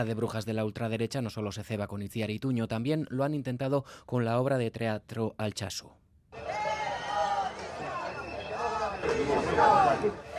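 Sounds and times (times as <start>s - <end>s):
speech: 0.0s - 6.6s, 9.1s - 10.3s
crowd of protesters chanting slogans outside a theater: 6.4s - 10.3s.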